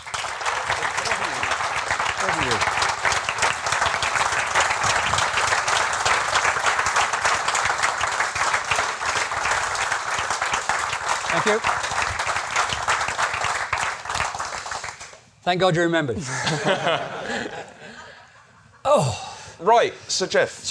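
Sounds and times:
conference room audience applause: 0.0 - 15.2
speech: 11.5 - 11.8, 15.4 - 17.7, 18.9 - 20.6
laughter: 16.2 - 19.1.

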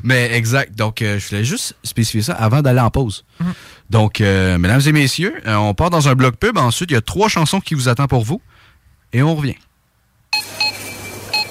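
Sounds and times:
speech: 0.0 - 8.5, 9.1 - 9.7
short electronic grocery checkout scanner beeps: 10.3 - 11.4.

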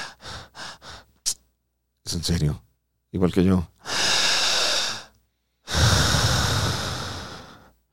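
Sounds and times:
deep breathing as a breathing exercise: 0.0 - 1.2, 3.8 - 7.9
speech: 2.1 - 3.8.

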